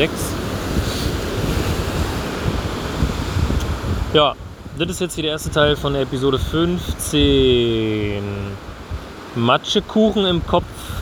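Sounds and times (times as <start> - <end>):
speech: 0.0 - 0.3, 4.1 - 8.7, 9.4 - 10.9
gusty wind buffeting the microphone: 0.0 - 10.9
ocean waves breaking on a shore: 0.0 - 10.9.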